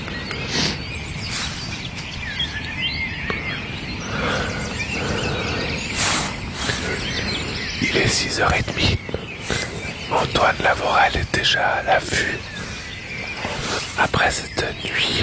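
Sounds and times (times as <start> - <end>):
steady outdoor hiss: 0.0 - 15.2
thrushes and other birds singing in a dense dawn chorus before daybreak: 0.0 - 15.2
speech: 8.2 - 9.6, 10.2 - 12.5, 14.0 - 15.2.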